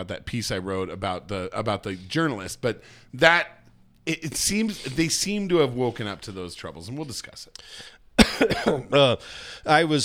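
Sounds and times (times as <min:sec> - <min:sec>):
speech: 0:00.0 - 0:10.0
person coughing: 0:08.2 - 0:09.2.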